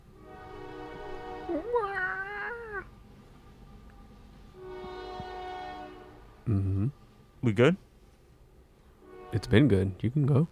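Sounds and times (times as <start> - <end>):
passing train droning hum: 0.0 - 10.5
sustained horn-like tones: 0.1 - 1.8, 3.5 - 7.7, 8.9 - 10.1
speech: 6.5 - 7.8, 9.3 - 10.5.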